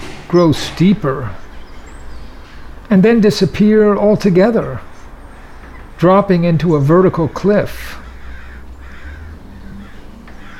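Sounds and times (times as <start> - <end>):
speech: 0.3 - 1.4, 2.9 - 4.9, 6.0 - 8.0
crows cawing harshly: 5.3 - 5.9, 8.0 - 10.5.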